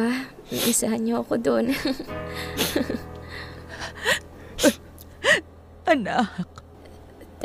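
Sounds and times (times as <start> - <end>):
speech: 0.0 - 3.5, 5.9 - 6.5
person sobbing with whimpering cries: 1.7 - 5.6.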